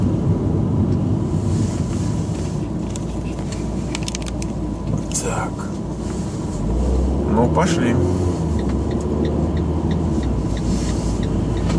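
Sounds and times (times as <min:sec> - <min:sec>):
road rumble and engine drone inside a moving car on a freeway: 0:00.0 - 0:11.7
speech: 0:07.4 - 0:08.2.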